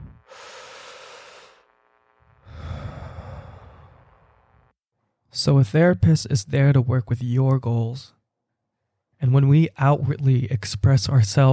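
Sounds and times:
deep breath: 0.0 - 1.7, 2.4 - 4.3
speech: 5.4 - 8.2, 9.2 - 11.5.

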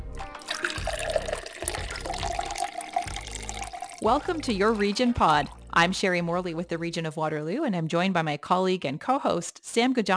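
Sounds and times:
water pouring into a glass: 0.3 - 5.7
speech: 4.0 - 10.1.

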